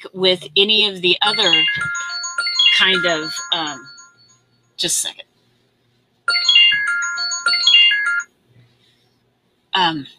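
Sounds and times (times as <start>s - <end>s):
speech: 0.1s - 2.0s, 2.7s - 3.9s, 4.8s - 5.3s, 9.8s - 10.1s
incoming-call ringtone chiming from a computer: 1.3s - 4.6s, 6.3s - 8.3s.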